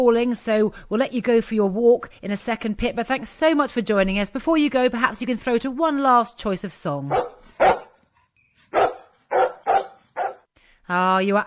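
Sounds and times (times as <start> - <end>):
speech: 0.0 - 7.9, 10.9 - 11.4
golden retriever barking: 7.1 - 8.0, 8.7 - 10.5.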